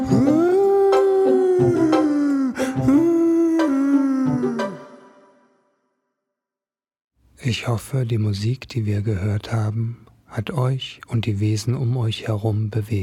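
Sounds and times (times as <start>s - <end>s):
dog howling: 0.2s - 4.7s
speech: 7.5s - 13.0s.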